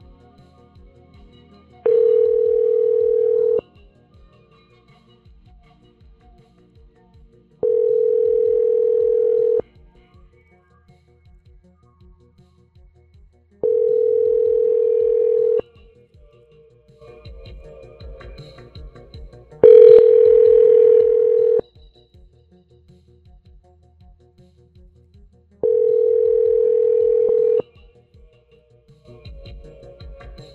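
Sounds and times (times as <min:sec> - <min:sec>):
ringback tone of an outgoing phone call: 0:01.9 - 0:03.6, 0:07.6 - 0:09.6, 0:13.6 - 0:15.6, 0:19.6 - 0:21.6, 0:25.6 - 0:27.6.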